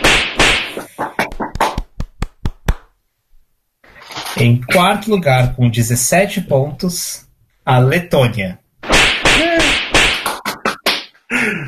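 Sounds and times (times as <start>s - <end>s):
whip crack sound effects from a soundboard: 0.0s - 1.8s, 8.8s - 11.1s
speech: 4.4s - 8.6s.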